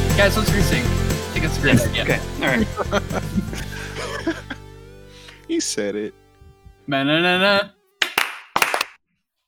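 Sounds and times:
speech: 0:00.2 - 0:04.4, 0:05.5 - 0:06.2, 0:06.9 - 0:07.7
laughter: 0:01.4 - 0:04.7
people clapping hands: 0:08.0 - 0:09.0.

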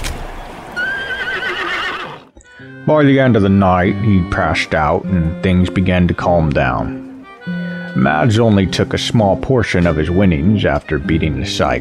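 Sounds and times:
horse whinnying: 0:00.8 - 0:02.4
speech: 0:02.6 - 0:07.0, 0:08.0 - 0:11.7.

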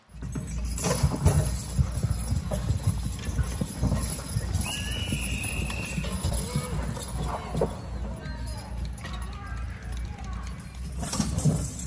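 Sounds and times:
horse hooves clip-clopping as horses pull heavy concrete blocks: 0:00.0 - 0:11.8
high whistle-like tone: 0:04.5 - 0:06.6.

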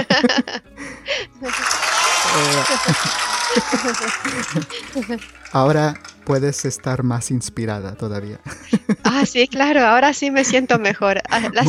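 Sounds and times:
laughter: 0:00.0 - 0:00.7, 0:01.4 - 0:06.5, 0:08.4 - 0:09.6, 0:10.4 - 0:11.6
applause: 0:01.5 - 0:07.0
speech: 0:02.6 - 0:11.6.

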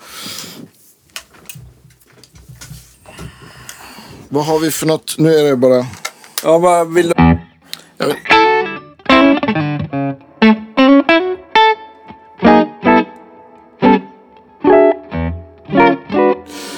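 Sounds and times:
speech: 0:04.3 - 0:07.2, 0:08.0 - 0:08.3
electric guitar chords strummed with light reverb: 0:08.3 - 0:16.5.

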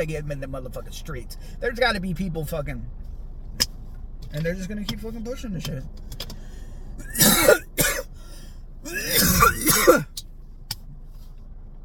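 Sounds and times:
speech: 0:00.0 - 0:03.7, 0:04.3 - 0:06.3
harsh coughing: 0:07.0 - 0:08.1, 0:08.9 - 0:10.2.

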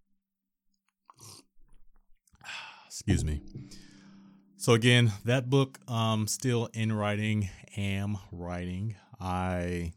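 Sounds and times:
sipping hot tea: 0:01.1 - 0:02.0
speech: 0:03.0 - 0:03.9, 0:04.6 - 0:09.9.

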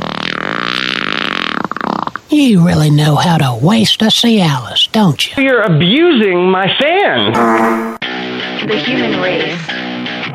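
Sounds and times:
long loud buzzing ripping fart: 0:00.0 - 0:02.3
speech: 0:02.3 - 0:08.0, 0:08.6 - 0:09.8.

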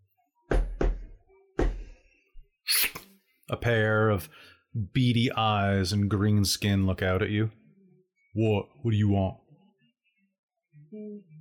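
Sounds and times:
solid raps knocking on a door: 0:00.5 - 0:01.8
speech: 0:03.5 - 0:07.6, 0:08.4 - 0:09.4.

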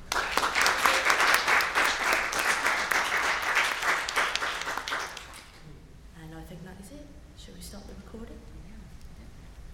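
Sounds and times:
audience applauding: 0:00.0 - 0:05.6.

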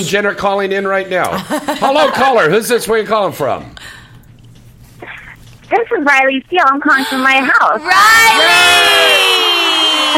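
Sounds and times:
speech: 0:00.0 - 0:04.0, 0:05.7 - 0:09.4
crowd cheering and whooping: 0:07.8 - 0:10.1.

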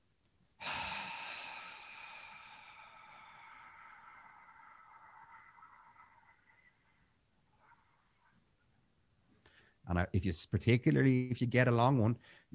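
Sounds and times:
long steady inhale through the nose during a breathwork exercise: 0:00.6 - 0:05.8
speech: 0:09.9 - 0:12.5.

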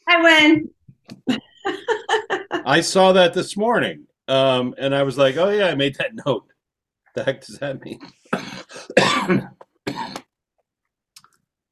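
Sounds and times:
speech: 0:00.2 - 0:01.9, 0:02.7 - 0:06.5, 0:07.2 - 0:08.6, 0:09.3 - 0:09.6
laughter: 0:01.3 - 0:03.3
raspy harsh coughing fit: 0:08.3 - 0:10.2.

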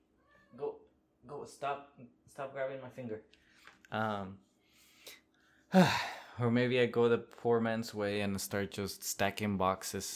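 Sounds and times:
cat meowing: 0:00.0 - 0:00.8
speech: 0:01.4 - 0:04.5, 0:05.7 - 0:10.1.

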